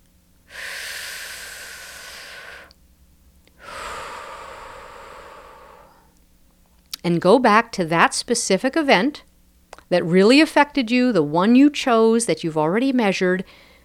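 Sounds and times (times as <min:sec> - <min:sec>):
person taking a deep breath: 0:00.4 - 0:02.8, 0:03.6 - 0:06.2, 0:13.5 - 0:13.8
speech: 0:07.0 - 0:09.3, 0:09.9 - 0:13.7.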